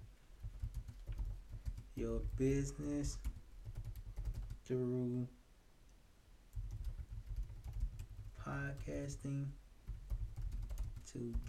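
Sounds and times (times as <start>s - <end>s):
typing on a computer keyboard: 0.4s - 4.6s, 6.5s - 9.1s, 9.9s - 11.4s
speech: 2.0s - 3.3s, 4.7s - 5.4s, 8.5s - 9.6s, 11.1s - 11.4s.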